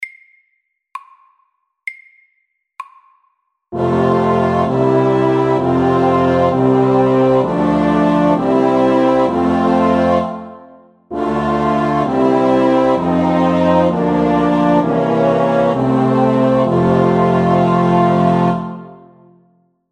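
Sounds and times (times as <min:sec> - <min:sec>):
loud chromatic chorale: 0:03.8 - 0:19.4.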